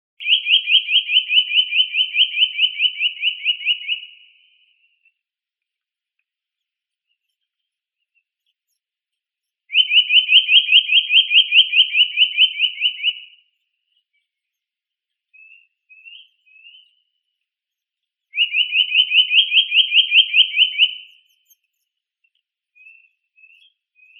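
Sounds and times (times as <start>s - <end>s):
Eurasian nuthatch Sitta europaea calling: 0.2s - 4.2s, 9.7s - 14.2s, 15.3s - 17.1s, 18.3s - 21.9s.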